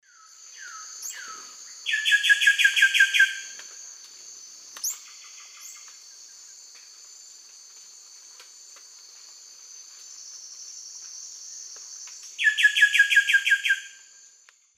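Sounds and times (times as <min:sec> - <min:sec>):
Cacicus solitarius song in eastern lowlands of South America: 0:00.0 - 0:03.7, 0:04.8 - 0:06.6, 0:12.3 - 0:14.4.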